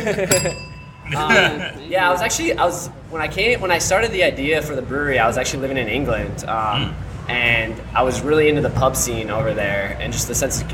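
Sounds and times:
speech: 0:00.0 - 0:10.7
single bright bell strike: 0:00.3 - 0:01.8.

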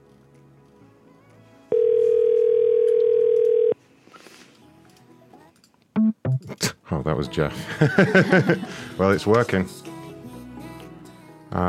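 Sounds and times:
telephone ringing tone on an outgoing call: 0:01.7 - 0:03.8
speech: 0:07.1 - 0:09.8
laughter: 0:07.5 - 0:09.0.

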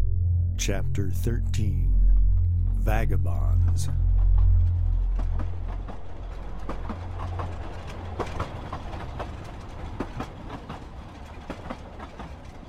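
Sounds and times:
speech: 0:00.6 - 0:02.0, 0:02.8 - 0:04.1
speeding freight train rolling on rails: 0:03.9 - 0:12.6
freight train wheels clacking over track joints: 0:05.3 - 0:12.6.

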